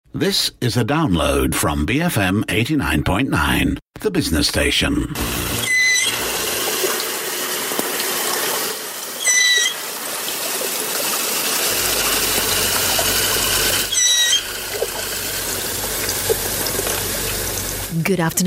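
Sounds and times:
speech: 0.2s - 5.6s, 18.1s - 18.4s
steady loud underwater water noise: 5.2s - 18.0s
dugong chirping squeals underwater: 5.6s - 6.2s, 9.2s - 9.9s, 13.8s - 14.6s.

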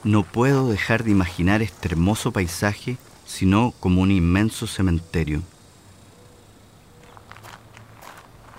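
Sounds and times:
footsteps of someone walking through desert terrain: 0.0s - 2.1s, 7.0s - 8.5s
speech: 0.0s - 5.5s.

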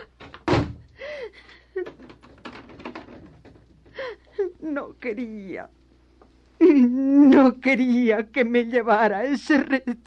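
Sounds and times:
door slamming shut: 0.2s - 0.9s
speech: 4.7s - 5.8s, 6.7s - 10.0s.

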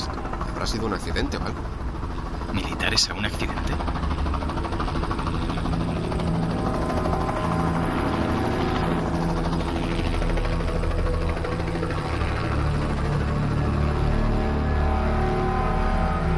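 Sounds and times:
helicopter rotor chop and engine roar overhead: 0.0s - 16.3s
speech: 0.6s - 1.8s, 2.5s - 4.0s.

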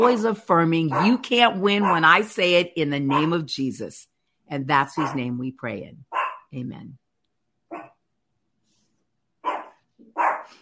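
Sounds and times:
speech: 0.0s - 7.0s
dog barking: 0.9s - 1.2s, 1.8s - 2.2s, 3.1s - 3.4s, 4.9s - 5.3s, 6.1s - 6.5s, 7.7s - 8.0s, 9.4s - 10.6s.

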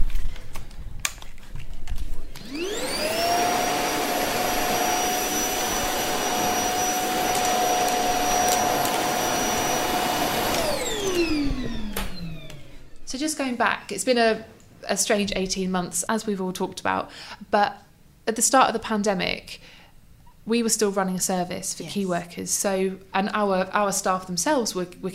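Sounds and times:
vacuum cleaner with removable end that filters the air running: 2.2s - 13.4s
speech: 13.4s - 19.8s, 20.5s - 25.1s.

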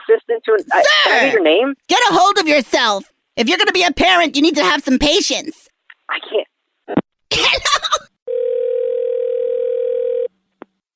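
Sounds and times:
speech: 0.1s - 8.0s
telephone dial tone after a call is disconnected: 8.3s - 10.3s.

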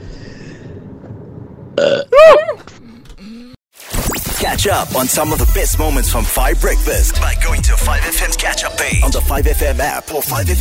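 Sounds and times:
loud croaking burp: 1.8s - 2.2s
speech: 4.5s - 10.6s.

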